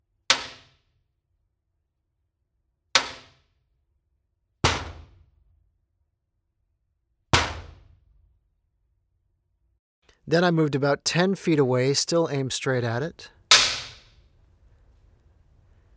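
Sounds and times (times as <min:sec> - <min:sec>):
speech: 0:10.3 - 0:13.4
yarn-topped wooden drumstick banging on garage door in a warehouse: 0:13.5 - 0:14.1.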